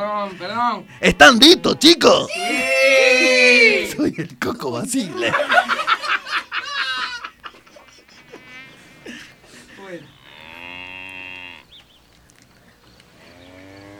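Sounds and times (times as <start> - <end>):
speech: 0.0 - 3.0, 3.6 - 5.7
laughter: 4.9 - 10.1
bull mooing while grazing on a plain: 8.1 - 9.3, 10.0 - 11.8, 13.1 - 13.9.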